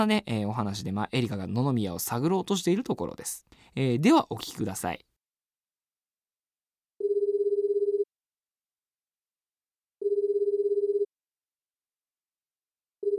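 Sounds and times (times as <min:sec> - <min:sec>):
speech: 0:00.0 - 0:05.1
telephone ringing in warbling bursts: 0:07.0 - 0:08.1, 0:10.0 - 0:11.1.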